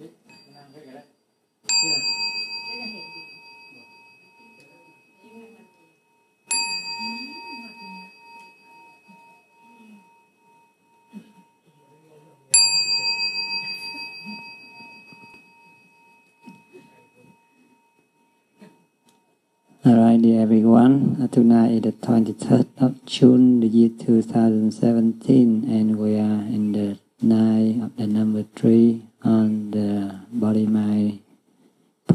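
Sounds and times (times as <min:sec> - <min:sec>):
meditation bell ringing: 0:00.0 - 0:22.6
faint low murmuring: 0:01.7 - 0:18.9, 0:19.7 - 0:31.3
speech: 0:19.8 - 0:31.2.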